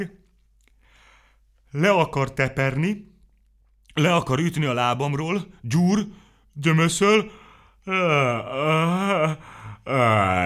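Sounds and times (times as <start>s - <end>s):
speech: 0.0s - 0.2s, 1.7s - 3.1s, 4.0s - 10.4s
person yawning loudly, acted out by a speaking voice: 7.8s - 10.4s.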